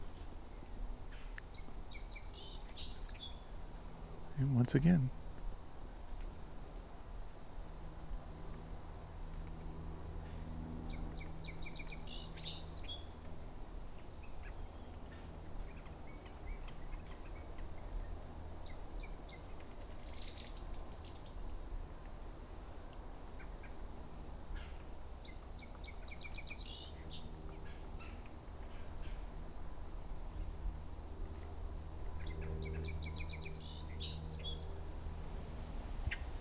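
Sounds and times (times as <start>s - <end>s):
song sparrow singing high chirps and buzzy trills: 0.0s - 3.9s, 10.9s - 22.3s, 23.2s - 29.2s, 32.2s - 35.1s, 36.0s - 36.4s
steady drone of insects: 0.0s - 36.4s
steady hiss of outdoor noise: 0.0s - 36.4s
speech: 4.4s - 5.2s.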